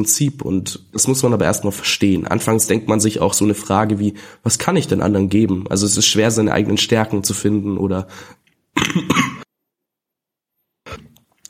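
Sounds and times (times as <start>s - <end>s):
speech: 0.0s - 9.3s
loud cough from a speaker: 8.8s - 9.5s.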